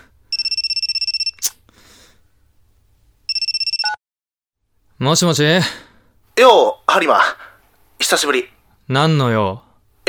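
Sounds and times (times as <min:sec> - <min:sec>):
electronic phone ringtone from an incoming call: 0:00.3 - 0:01.4, 0:03.3 - 0:04.0
speech: 0:05.0 - 0:10.0.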